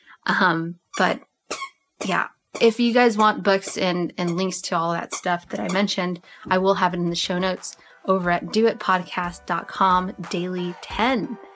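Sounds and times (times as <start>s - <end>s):
speech: 0.2s - 1.3s, 2.0s - 11.5s
dog squeaking her squeaky toy: 0.9s - 5.9s.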